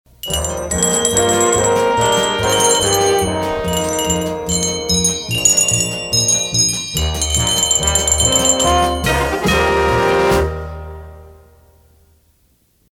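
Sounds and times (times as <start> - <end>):
bell signal: 0.2 - 9.8.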